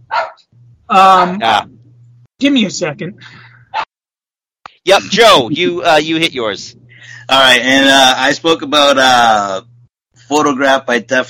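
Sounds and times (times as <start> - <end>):
low steady hum: 0.0 - 3.8, 4.8 - 11.2
dog barking: 0.1 - 0.4
speech: 0.9 - 1.7, 2.4 - 3.5, 4.8 - 9.7, 10.3 - 11.2.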